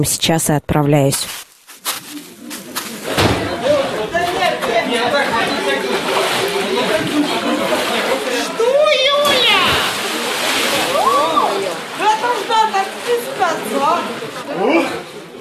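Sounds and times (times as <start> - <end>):
speech: 0.0 - 1.4
water splashing and sloshing as people plunge into icy water: 1.9 - 15.3
excited voices and shouts from a lively crowd: 3.5 - 12.5.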